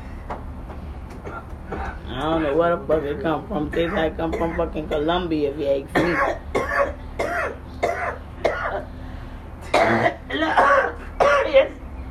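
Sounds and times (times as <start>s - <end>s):
speech: 2.2s - 7.0s
person coughing harshly from smoking marijuana: 3.7s - 4.7s, 6.0s - 8.9s, 9.7s - 11.7s
person clearing throat: 6.0s - 8.9s, 9.7s - 11.6s.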